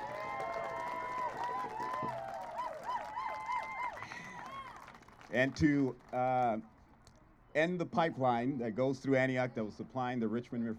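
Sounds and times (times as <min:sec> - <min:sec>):
large crowd applauding at a rally: 0:00.0 - 0:06.2
speech: 0:05.3 - 0:06.7, 0:07.6 - 0:10.7.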